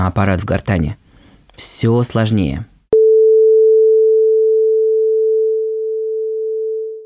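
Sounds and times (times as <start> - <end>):
speech: 0.0 - 1.0, 1.6 - 2.7
pure electronic sine tone: 3.0 - 7.0.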